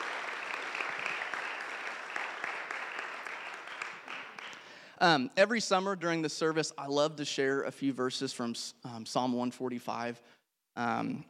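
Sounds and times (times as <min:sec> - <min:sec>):
audience applause at a church service: 0:00.0 - 0:04.8
speech: 0:05.0 - 0:11.2.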